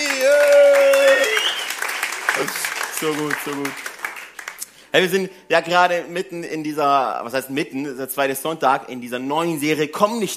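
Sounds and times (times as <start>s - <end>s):
crowd whooping and cheering: 0.0s - 3.7s
audience applause: 0.0s - 4.8s
speech: 2.4s - 3.9s, 4.9s - 10.3s.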